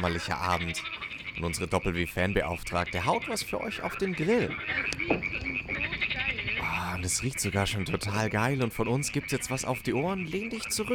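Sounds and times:
speech: 0:00.0 - 0:05.9, 0:07.0 - 0:10.9
faint crackle of a campfire: 0:00.0 - 0:08.7
chorus of frogs croaking mating calls on an early summer evening: 0:00.0 - 0:10.9.

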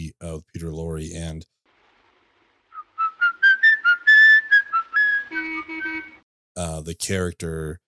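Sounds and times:
speech: 0:00.2 - 0:01.6, 0:06.6 - 0:07.8
man whistling a tune in a 1931 film: 0:02.8 - 0:06.2.

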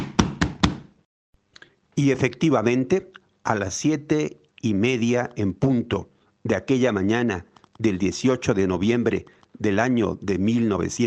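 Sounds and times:
police knocking on a house door on Santa Clara street: 0:00.0 - 0:00.9
speech: 0:02.0 - 0:11.0.

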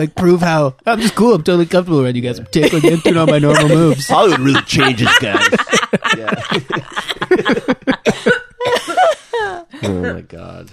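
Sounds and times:
speech: 0:00.0 - 0:07.7, 0:09.9 - 0:10.7
person chuckling: 0:02.7 - 0:10.0
person coughing from a tickle in the throat: 0:08.0 - 0:09.2.

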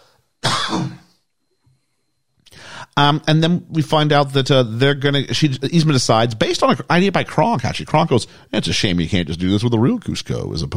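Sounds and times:
person coughing: 0:00.4 - 0:01.2
faint breath or throat sound: 0:01.6 - 0:03.0, 0:08.3 - 0:08.5
speech: 0:03.0 - 0:10.7.

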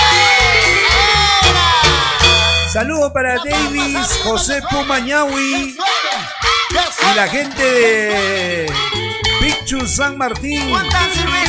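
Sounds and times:
crowd of single women shouting and cheering: 0:00.0 - 0:02.4
steady thumping low beat: 0:00.9 - 0:05.7
speech: 0:02.8 - 0:11.4.

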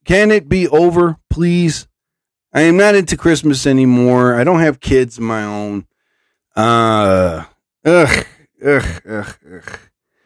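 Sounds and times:
speech: 0:00.1 - 0:01.9, 0:02.5 - 0:05.9, 0:06.6 - 0:09.9
person yawning: 0:06.6 - 0:09.9.

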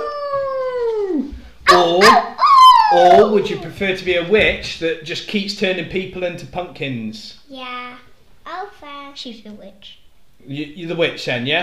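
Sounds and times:
human voice imitating a werewolf howl: 0:00.0 - 0:03.4
speech: 0:01.8 - 0:02.3, 0:02.9 - 0:08.0, 0:08.6 - 0:11.6.

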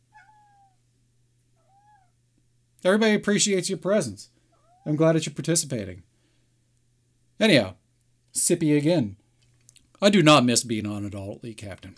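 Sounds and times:
steady low electrical hum: 0:00.0 - 0:11.9
cat meowing: 0:00.1 - 0:00.8, 0:01.6 - 0:02.2, 0:04.6 - 0:04.9
speech: 0:02.8 - 0:06.1, 0:07.4 - 0:07.8, 0:08.4 - 0:09.2, 0:10.0 - 0:11.9.

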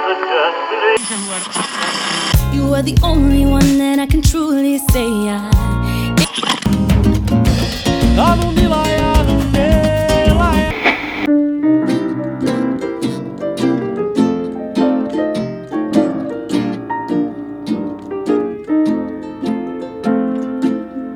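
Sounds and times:
speech: 0:00.1 - 0:08.9
full-band podcast intro jingle: 0:06.7 - 0:20.8.

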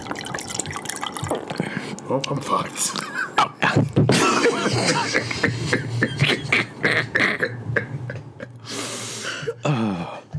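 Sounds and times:
liquid being poured: 0:00.0 - 0:08.7
laughter: 0:01.6 - 0:10.0
speech: 0:02.1 - 0:03.9.

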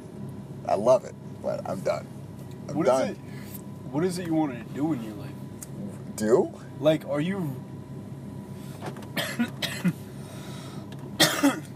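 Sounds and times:
speech: 0:00.7 - 0:03.3, 0:03.9 - 0:05.3, 0:06.2 - 0:07.7
harsh raspy coughs: 0:09.1 - 0:10.1, 0:11.2 - 0:11.7
throat-clearing bursts: 0:11.2 - 0:11.7.

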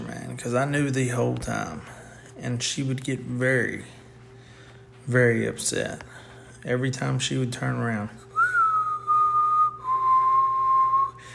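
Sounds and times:
speech: 0:00.4 - 0:04.0, 0:05.0 - 0:08.2
person whistling long steady notes: 0:08.2 - 0:11.3.

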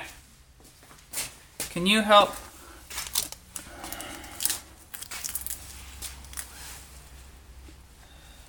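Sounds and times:
speech: 0:01.8 - 0:02.4
duct tape being torn from a brand-new roll: 0:03.0 - 0:06.7.

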